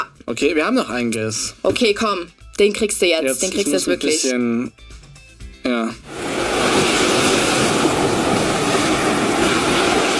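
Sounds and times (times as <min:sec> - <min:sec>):
speech: 0:00.3 - 0:05.0, 0:05.6 - 0:06.2
ocean surf breaking: 0:06.1 - 0:10.1.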